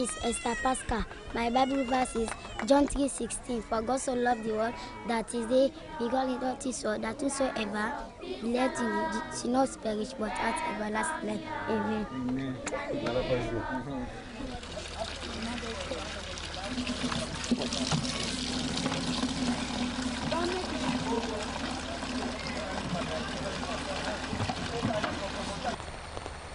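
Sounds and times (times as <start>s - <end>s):
speech: 0.0s - 14.6s
outdoor murmur of voices in Sierra Leone: 0.0s - 19.0s, 20.2s - 25.8s
water scooped, poured and splashing for a family's daily needs: 14.4s - 25.8s.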